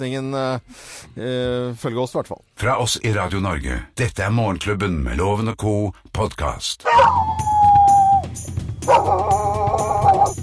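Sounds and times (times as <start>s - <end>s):
speech: 0.0s - 7.6s, 8.4s - 10.4s
dog howling: 6.9s - 10.4s.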